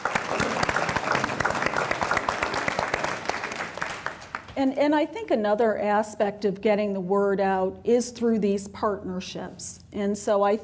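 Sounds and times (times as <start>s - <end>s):
room full of people clapping: 0.0s - 4.6s
speech: 4.6s - 10.6s.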